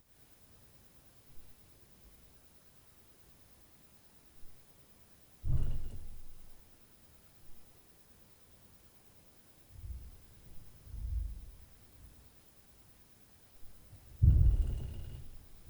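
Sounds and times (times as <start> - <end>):
boom from upstairs at night: 5.4 - 6.4, 14.2 - 15.4.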